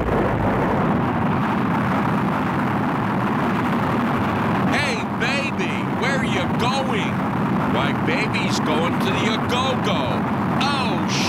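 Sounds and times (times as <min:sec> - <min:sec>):
rocket launching with a loud dense roar: 0:00.0 - 0:11.2.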